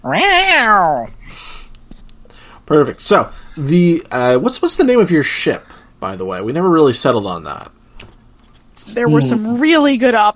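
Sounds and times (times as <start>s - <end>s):
person imitating a cat meowing: 0.0s - 1.1s
speech: 0.0s - 1.1s, 2.7s - 7.8s, 8.9s - 10.3s.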